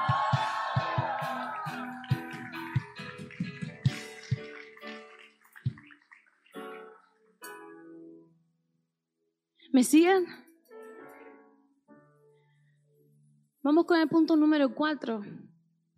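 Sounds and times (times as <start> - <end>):
audience shouting a victory cry: 0.0 - 5.1
scattered claps: 0.3 - 6.8
speech: 9.8 - 10.4, 13.7 - 15.5.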